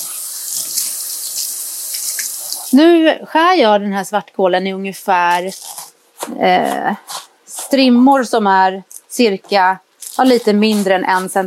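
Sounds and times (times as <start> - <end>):
running tap water rinsing black kale: 0.0 - 2.8
speech: 2.7 - 11.4.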